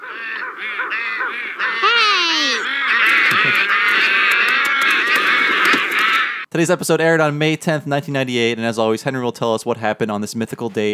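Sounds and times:
several geese flying north in springtime honking: 0:00.0 - 0:06.5
speech: 0:00.6 - 0:01.9, 0:06.6 - 0:10.9.

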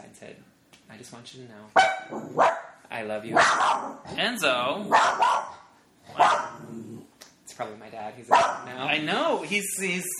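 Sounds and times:
speech: 0:00.2 - 0:05.6, 0:07.6 - 0:10.1
dog barking: 0:01.8 - 0:04.0, 0:04.9 - 0:06.6, 0:08.3 - 0:08.8.

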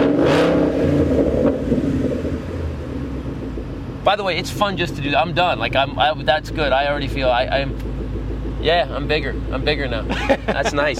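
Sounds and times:
Roush Stage 3 Mustang downshift backfire pops: 0:00.0 - 0:03.8
Roush Stage 3 Mustang engine revving hard while downshifting: 0:00.0 - 0:10.9
speech: 0:04.1 - 0:07.9, 0:08.6 - 0:10.9
laughter: 0:10.0 - 0:10.9.

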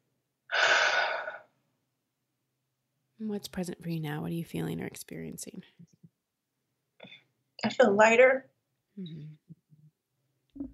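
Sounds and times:
deep breath drawn in during a guided calming exercise: 0:00.5 - 0:01.5
speech: 0:03.2 - 0:06.1, 0:07.6 - 0:09.4.

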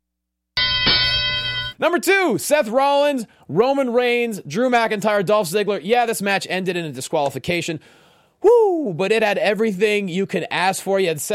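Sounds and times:
bright metallic bell ringing: 0:00.6 - 0:01.8
speech: 0:01.8 - 0:11.3.

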